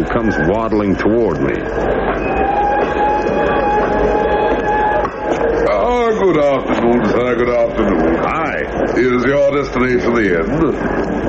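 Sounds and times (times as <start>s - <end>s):
high metallic whining tones from a train: 0.0s - 11.2s
train rumbling at a small village station at the foot of a mountain: 0.0s - 11.2s
speech: 0.1s - 2.6s, 6.1s - 11.2s.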